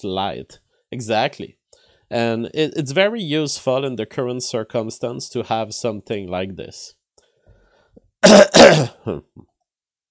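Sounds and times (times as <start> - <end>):
speech: 0.0 - 7.0, 8.2 - 9.5
person clearing throat: 8.2 - 9.5.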